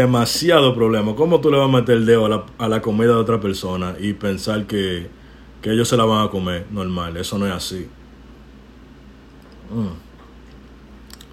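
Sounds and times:
speech: 0.0s - 8.0s, 9.7s - 10.0s
quick sip and throaty gulp of whisky: 10.4s - 11.3s.

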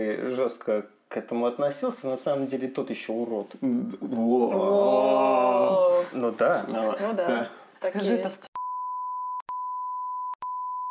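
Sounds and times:
speech: 0.0s - 8.5s
loud high-pitched censor bleep tone over a swear word: 8.6s - 10.9s.

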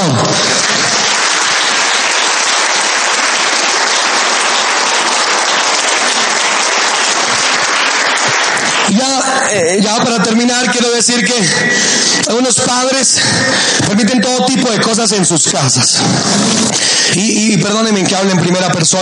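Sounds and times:
large crowd applauding: 0.0s - 19.0s
speech: 11.1s - 11.7s, 15.0s - 19.0s.

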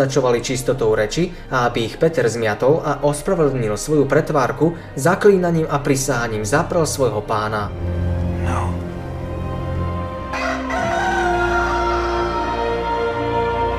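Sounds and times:
speech: 0.0s - 8.6s
rooster crowing: 10.0s - 13.6s.

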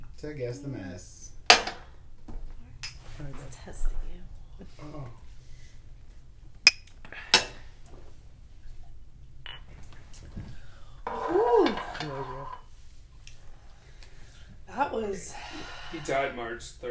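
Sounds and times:
speech: 0.2s - 1.4s, 3.2s - 5.2s, 15.1s - 16.9s
glasses clinking in a toast: 2.8s - 3.0s, 11.1s - 12.7s.

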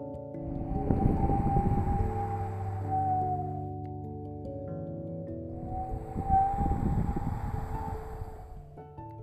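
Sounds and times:
steady low tonal drone: 0.4s - 3.8s, 5.5s - 8.9s
strong wind howling in gusts: 0.4s - 3.8s, 5.5s - 8.9s.

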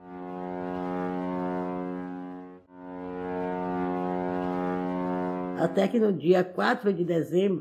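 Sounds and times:
steamship horn blowing: 0.0s - 5.6s
speech: 5.6s - 7.5s.

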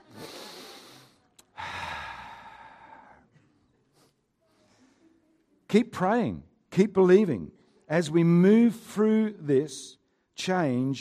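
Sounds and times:
crowd breathing in and out together: 0.0s - 5.3s
speech: 5.7s - 11.0s.

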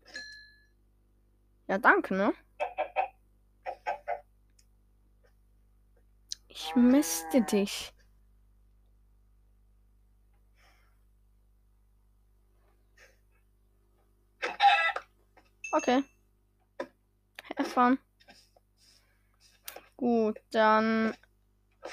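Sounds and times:
speech: 1.7s - 2.5s, 6.7s - 8.0s, 15.8s - 16.2s, 17.6s - 18.1s, 20.0s - 21.2s
short clipped chicken clucks from a video game: 2.6s - 4.3s, 14.4s - 15.0s.

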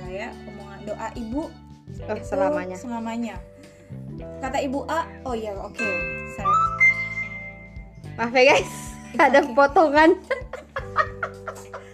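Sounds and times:
speech: 0.1s - 6.7s, 8.2s - 11.8s
phone notification chime: 5.8s - 8.0s
laughter: 9.1s - 11.9s.

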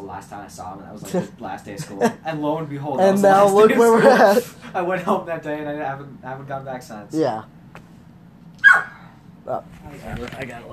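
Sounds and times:
low hum: 0.0s - 10.7s
speech: 0.1s - 7.6s, 9.5s - 10.7s
dog short sharp bark: 8.6s - 9.1s.

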